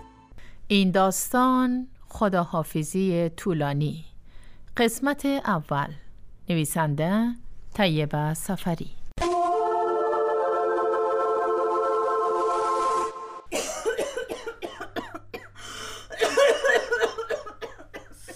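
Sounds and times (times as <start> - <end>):
speech: 0.7 - 4.1, 4.8 - 9.0
steady held musical tone: 9.2 - 13.5
person coughing in harsh uneven bursts: 13.5 - 18.3.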